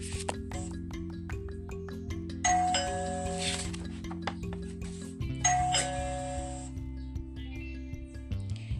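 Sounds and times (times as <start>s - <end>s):
soft instrumental music: 0.0s - 8.7s
doorbell ringing with bright chimes: 2.4s - 3.6s, 5.4s - 6.7s.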